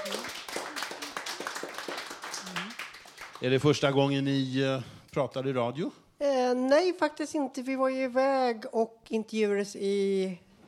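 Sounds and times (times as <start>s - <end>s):
brisk hand clapping from a small group: 0.0s - 3.6s
speech: 3.4s - 10.4s.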